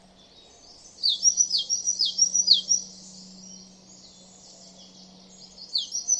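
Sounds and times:
faint low hum: 0.0 - 6.1
great tit calling: 0.6 - 3.6, 4.4 - 6.1.

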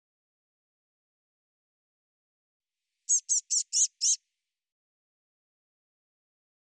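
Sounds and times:
Eurasian blue tit calling: 3.1 - 4.2.

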